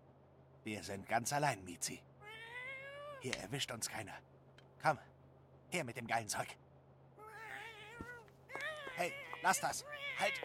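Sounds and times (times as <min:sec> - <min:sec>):
faint low hum: 0:00.0 - 0:10.4
speech: 0:00.6 - 0:02.1, 0:03.2 - 0:05.1, 0:05.7 - 0:06.6, 0:09.0 - 0:10.4
cat meowing: 0:02.2 - 0:03.3, 0:07.2 - 0:10.4.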